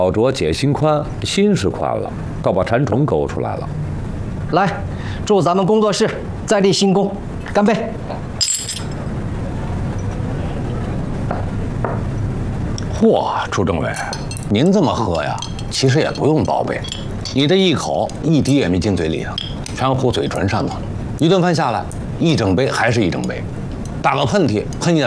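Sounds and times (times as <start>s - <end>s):
several people talking: 0.0s - 3.7s, 4.5s - 8.2s, 12.9s - 25.0s
low busy room hum: 0.0s - 25.0s
glasses clinking during a celebratory toast: 8.4s - 9.0s, 14.0s - 19.8s.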